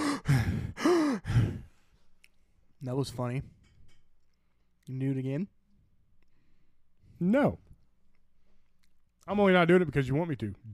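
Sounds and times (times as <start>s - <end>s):
heavy breathing into the microphone: 0.0s - 2.2s
speech: 2.8s - 3.6s, 4.9s - 5.6s, 7.2s - 7.6s, 9.3s - 10.7s.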